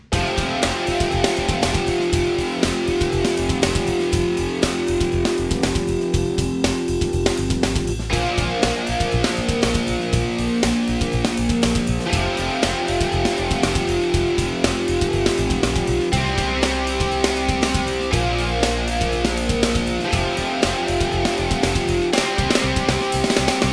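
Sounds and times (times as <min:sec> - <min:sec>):
heavy metal backing track: 0:00.1 - 0:23.7.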